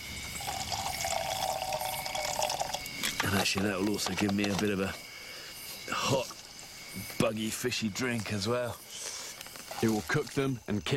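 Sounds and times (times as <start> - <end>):
water pouring from a canteen into a pot: 0.3 - 3.0
speech: 3.3 - 5.1, 6.1 - 6.3, 7.0 - 8.9, 9.8 - 10.9.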